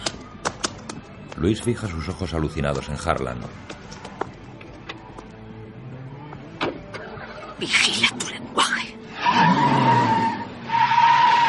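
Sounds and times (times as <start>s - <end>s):
speech: 1.4s - 3.8s, 7.6s - 8.4s
car tires screeching as a car pulls up: 9.1s - 11.4s.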